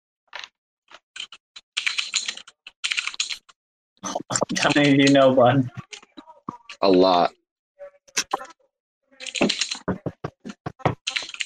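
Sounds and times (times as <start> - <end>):
typing on a computer keyboard: 1.2 - 3.5, 9.2 - 11.4
speech: 4.0 - 5.9, 6.8 - 7.4.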